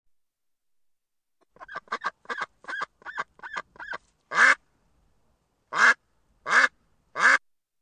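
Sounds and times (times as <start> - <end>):
domestic duck quacking: 1.6 - 4.6, 5.7 - 7.4.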